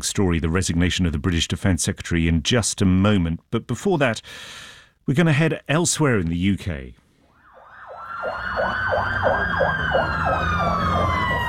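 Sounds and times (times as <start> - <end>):
speech: 0.0 - 7.0, 8.2 - 11.4
emergency vehicle sirens in Belfast: 7.3 - 11.4.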